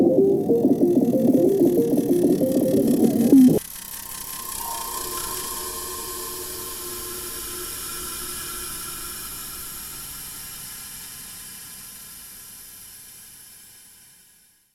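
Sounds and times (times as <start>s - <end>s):
futuristic jingle: 0.2s - 7.8s.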